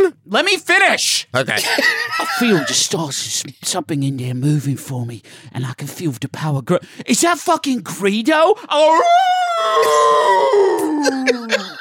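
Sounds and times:
speech: 0.1 - 11.7
laughter: 1.6 - 3.0, 10.6 - 11.7
person's voice imitating a wolf howl: 8.8 - 11.6.

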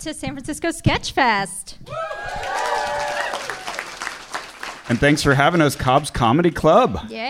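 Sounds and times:
speech: 0.0 - 3.1, 4.9 - 7.2
crowd cheering: 1.9 - 6.3
audience clapping at a live comedy show in San Francisco, California: 1.9 - 6.7.

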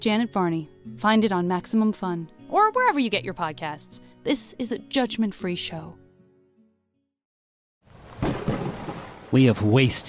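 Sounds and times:
speech: 0.0 - 6.0, 9.3 - 10.0
rolling thunder: 8.0 - 9.4.

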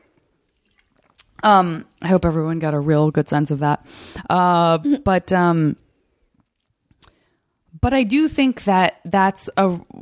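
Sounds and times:
person sipping water: 0.4 - 1.4
speech: 1.4 - 5.8, 7.8 - 9.9.

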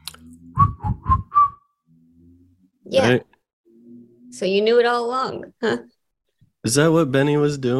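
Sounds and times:
person whistling short clear notes: 0.6 - 1.7
speech: 2.9 - 3.3, 4.3 - 6.0, 6.6 - 7.7.

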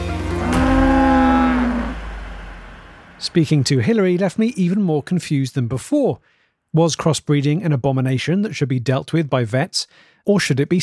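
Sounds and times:
low droning lowing of a cow: 0.2 - 3.2
cow mooing and bellowing: 0.3 - 2.1
speech: 3.3 - 10.8.

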